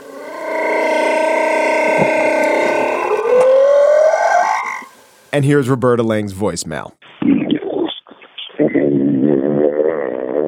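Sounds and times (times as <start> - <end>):
humpback whale tonal moan rich in harmonics: 0.0 - 5.0, 8.6 - 10.4
speech: 5.4 - 7.5.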